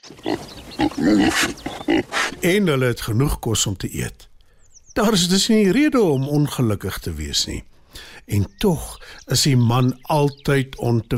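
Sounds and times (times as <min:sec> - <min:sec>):
pig grunting and snorting: 0:00.0 - 0:02.5
speech: 0:00.0 - 0:04.3, 0:05.0 - 0:11.1.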